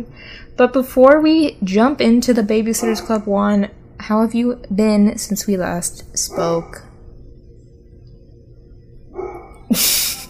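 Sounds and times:
speech: 0.0s - 6.9s, 9.7s - 10.1s
dog barking: 2.8s - 3.2s, 6.3s - 6.9s, 9.2s - 9.7s.

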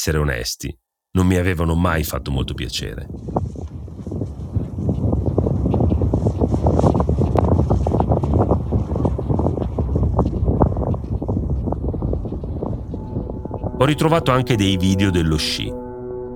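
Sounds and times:
speech: 0.0s - 3.6s, 13.8s - 15.8s
gusts of icy mountain wind buffeting the microphone: 2.2s - 15.0s.

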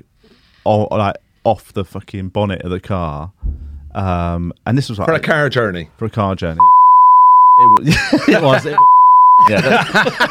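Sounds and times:
speech: 0.7s - 6.8s, 7.6s - 10.2s
censor beep: 6.6s - 7.8s, 8.8s - 9.5s
laughter: 7.8s - 8.8s, 9.4s - 10.2s.

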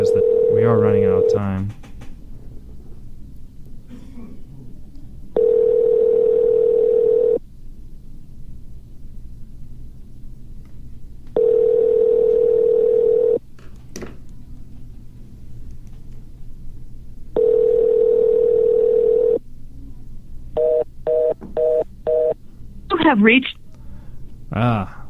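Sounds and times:
telephone tone in long steady bursts: 0.0s - 1.4s, 5.4s - 7.4s, 11.4s - 13.4s, 17.4s - 19.4s, 20.6s - 22.4s
speech: 0.0s - 1.8s, 23.2s - 23.6s
low hum: 0.0s - 25.0s.

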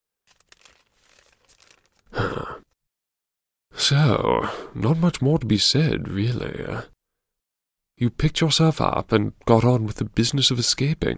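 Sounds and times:
paper crumpling: 0.0s - 2.2s
speech: 3.9s - 6.9s, 8.0s - 11.1s.

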